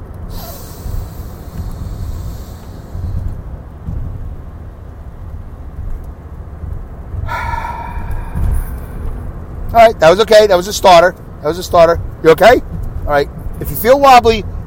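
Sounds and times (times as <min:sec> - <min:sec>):
low rumble: 0:00.0 - 0:13.8
person taking a sharp intake of breath during a deep-breathing exercise: 0:00.3 - 0:03.3, 0:07.2 - 0:09.4
person's forceful gasping exhale during a deep-breathing exercise: 0:00.3 - 0:03.3, 0:07.2 - 0:09.3
speech: 0:09.8 - 0:14.5.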